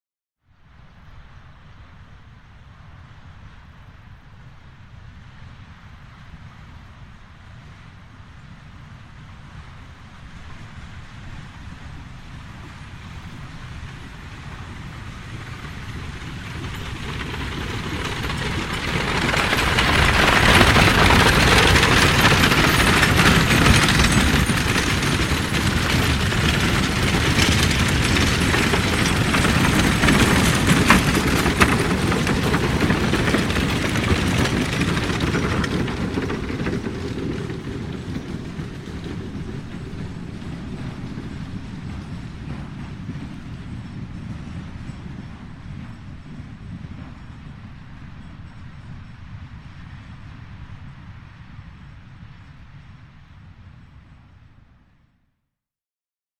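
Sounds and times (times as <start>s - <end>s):
horse drawn carriage and four-wheeled wagon: 10.4s - 52.6s.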